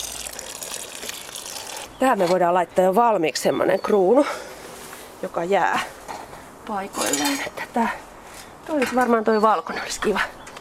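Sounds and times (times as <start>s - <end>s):
water pouring from a watering can into a soil furrow: 0.0s - 1.9s
speech: 2.0s - 4.4s, 5.2s - 6.0s, 6.7s - 8.0s, 8.7s - 10.5s.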